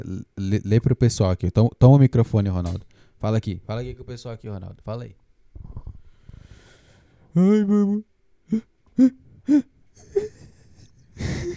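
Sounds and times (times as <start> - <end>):
speech: 0.0 - 5.8, 7.4 - 10.4
man imitating crying with sobbing gasps: 7.3 - 11.5.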